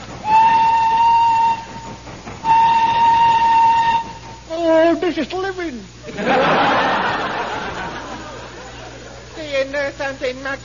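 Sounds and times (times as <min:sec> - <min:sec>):
steam train whistle blasts while climbing slowly up a mountainside: 0:00.2 - 0:04.5
speech: 0:05.1 - 0:06.5, 0:09.6 - 0:10.6
laughter: 0:06.0 - 0:09.4.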